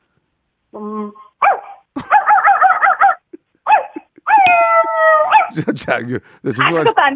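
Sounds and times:
speech: 0:00.8 - 0:01.3, 0:05.6 - 0:07.1
person imitating puppy yelps, yapping barks, squeaks and whining: 0:01.0 - 0:05.6
laughter: 0:02.0 - 0:04.9, 0:05.5 - 0:07.1.

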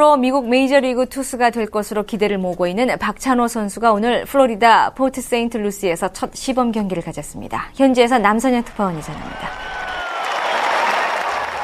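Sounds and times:
speech: 0:00.0 - 0:09.8
large outdoor stadium crowd cheering and applauding at baseball game: 0:08.8 - 0:11.6.

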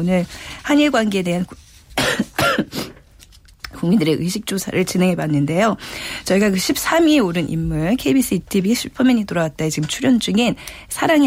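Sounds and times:
speech: 0:00.0 - 0:02.2, 0:03.8 - 0:11.2
harsh coughs: 0:02.0 - 0:03.0.

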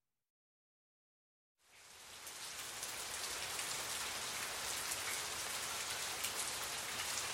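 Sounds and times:
steady rain falling: 0:01.6 - 0:07.3.

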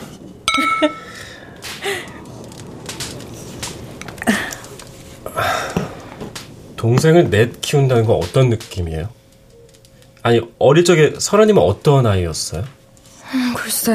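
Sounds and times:
wine glasses clinking in a toast: 0:00.5 - 0:01.2
speech: 0:00.6 - 0:02.1, 0:06.8 - 0:09.2, 0:10.2 - 0:13.9.

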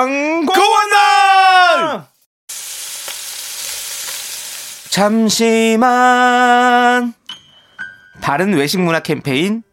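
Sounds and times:
speech: 0:00.0 - 0:01.0, 0:05.0 - 0:07.2, 0:08.2 - 0:09.7
pork belly sizzling on a grill: 0:02.5 - 0:05.4.

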